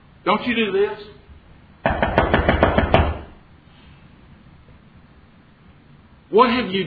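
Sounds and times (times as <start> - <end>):
speech: 0.2 - 1.2, 6.3 - 6.8
sharp knocks on a door: 1.8 - 3.4.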